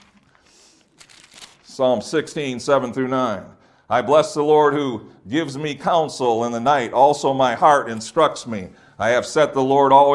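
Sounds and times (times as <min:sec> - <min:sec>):
book pages turning: 0:00.0 - 0:01.7
speech: 0:01.8 - 0:10.1.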